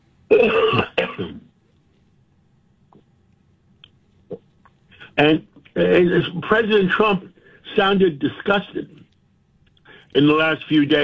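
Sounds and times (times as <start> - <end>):
person clearing throat: 0.3 - 1.5
faint clicks: 2.9 - 4.8, 9.0 - 10.2
speech: 5.2 - 9.0, 10.1 - 11.0.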